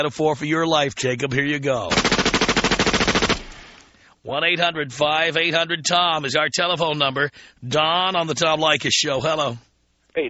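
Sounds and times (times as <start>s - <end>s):
speech: 0.0s - 2.2s, 4.2s - 10.2s
machine-gun fire sound effect: 1.9s - 3.8s.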